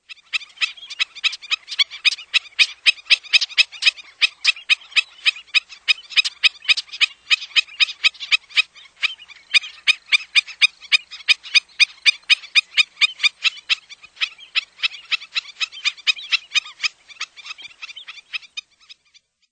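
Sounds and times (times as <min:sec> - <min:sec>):
black-necked stilt: 0:00.0 - 0:19.3.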